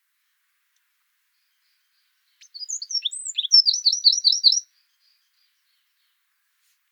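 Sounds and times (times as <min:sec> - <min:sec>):
Eurasian wren singing: 0:02.3 - 0:04.6.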